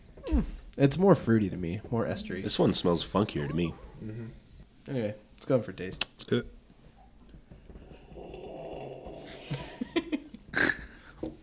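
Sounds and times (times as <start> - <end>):
speech: 0.4 - 6.6
person imitating an old man snoring: 7.8 - 9.8.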